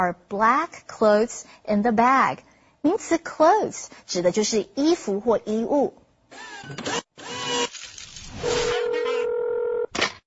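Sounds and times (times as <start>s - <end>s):
speech: 0.0s - 7.0s
telephone ringing with electronic tone: 8.4s - 9.9s.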